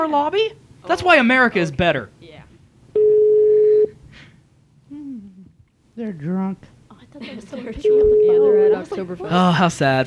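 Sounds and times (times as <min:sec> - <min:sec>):
speech: 0:00.0 - 0:02.4, 0:06.0 - 0:10.0
electronic ringback tone of a phone call to a hotel: 0:03.0 - 0:04.0, 0:07.8 - 0:08.9.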